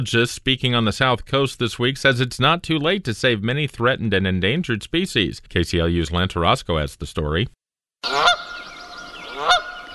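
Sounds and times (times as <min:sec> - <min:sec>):
speech: 0:00.0 - 0:08.7
Canada goose honking: 0:08.0 - 0:09.9
faint steady hum of other birds: 0:08.0 - 0:09.9.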